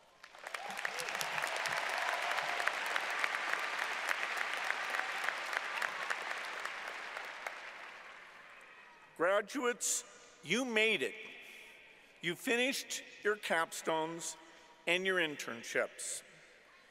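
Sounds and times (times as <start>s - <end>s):
audience of friends and family applauding at a graduation ceremony: 0.0s - 8.7s
speech: 9.2s - 11.3s, 12.2s - 16.3s.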